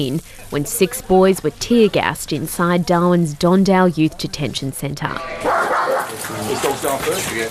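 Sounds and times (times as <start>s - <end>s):
speech: 0.0s - 5.5s, 6.3s - 7.4s
police dog barking and yelping: 5.4s - 6.2s.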